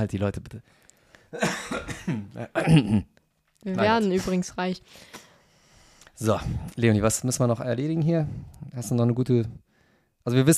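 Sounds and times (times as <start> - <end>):
speech: 0.0 - 5.2, 6.2 - 10.5
person coughing: 1.4 - 3.1
throaty clearing: 1.4 - 3.1.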